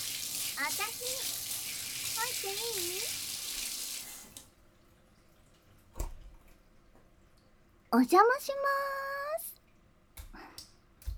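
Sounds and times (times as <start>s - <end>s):
shower water running: 0.0s - 4.6s
speech: 0.6s - 1.5s, 2.2s - 3.3s, 7.9s - 9.1s.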